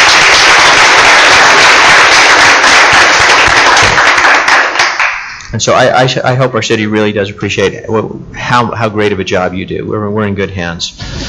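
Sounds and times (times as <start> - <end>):
crowd applauding at a city council meeting: 0.0 - 5.5
speech: 5.6 - 11.0.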